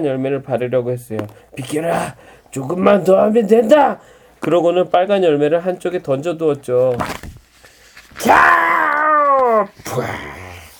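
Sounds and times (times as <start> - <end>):
speech: 0.0 - 7.3, 8.2 - 8.5, 9.6 - 10.4
human voice imitating a tyrannosaurus roar: 8.2 - 10.7.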